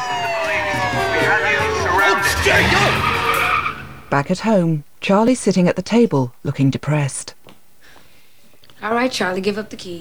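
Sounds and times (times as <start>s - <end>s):
police squad car sirens wailing: 0.0s - 4.2s
police squad cars pulling up: 0.0s - 4.5s
speech: 4.1s - 7.4s, 8.8s - 10.0s.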